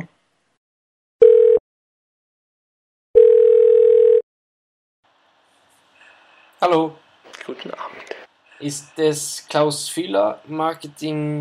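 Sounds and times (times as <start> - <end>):
telephone dial tone while placing a call: 1.2 - 1.6, 3.2 - 4.2
speech: 6.6 - 11.3.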